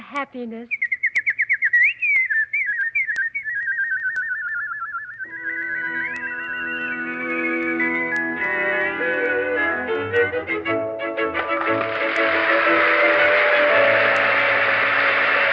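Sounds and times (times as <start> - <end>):
speech: 0.1 - 0.9
nightingale song rendered as a warbling whistle: 0.5 - 10.4
soft sustained instrumental tones: 5.2 - 15.5.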